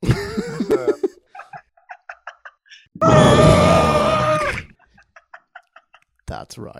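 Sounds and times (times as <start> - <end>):
laughter: 0.0 - 2.9, 4.8 - 6.1
strained vocal cry: 3.0 - 4.8
speech: 6.5 - 6.7.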